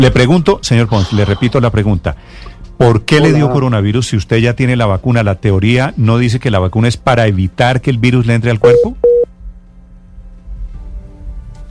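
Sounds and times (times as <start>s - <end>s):
speech: 0.0s - 9.2s
low garbled noise from a dropping signal: 0.7s - 1.8s
WhatsApp call reconnecting tone: 8.6s - 9.3s.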